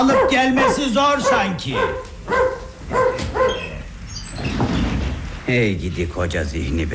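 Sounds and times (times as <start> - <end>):
speech: 0.0 - 3.1, 5.5 - 6.9
dog barking with a whimpering pitch: 0.0 - 3.9.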